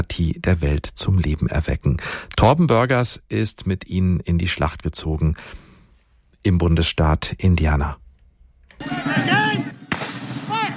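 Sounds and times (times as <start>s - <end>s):
speech: 0.0s - 5.7s, 6.4s - 8.0s, 8.8s - 9.6s
voices of costumed reenactors calling out and shouting: 8.8s - 10.7s
historical cannon shots booming in a battle reenactment: 9.9s - 10.7s.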